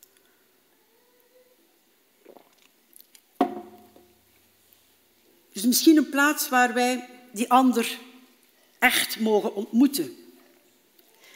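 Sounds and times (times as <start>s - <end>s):
person sipping a drink with mouth and swallowing noises: 2.2s - 3.3s
sharp loud clunk: 3.4s - 4.0s
speech: 5.6s - 8.1s, 8.8s - 10.2s.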